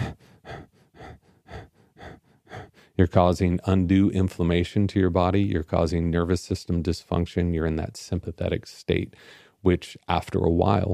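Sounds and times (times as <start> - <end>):
person breathing shallow quick breaths while stooped over: 0.0 - 3.1, 9.1 - 9.6
speech: 3.0 - 10.9.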